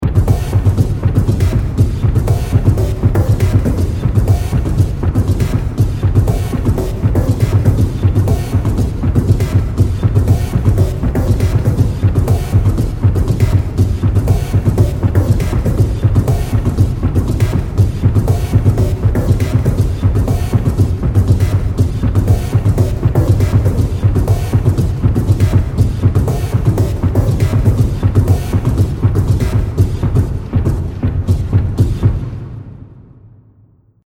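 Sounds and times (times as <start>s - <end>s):
sci-fi war drums music loop: 0.0s - 32.6s.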